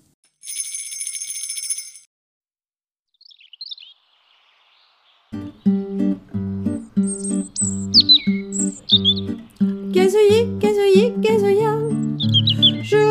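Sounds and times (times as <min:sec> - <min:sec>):
tinkling bell-like chimes: 0:00.3 - 0:02.1
European robin tweeting and chirping: 0:03.1 - 0:13.0
light instrumental melody: 0:05.4 - 0:13.0.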